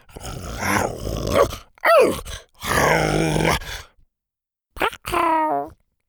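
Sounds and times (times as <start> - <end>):
voice imitating a hungry T-Rex growling: 0.2 - 3.9, 4.8 - 5.8.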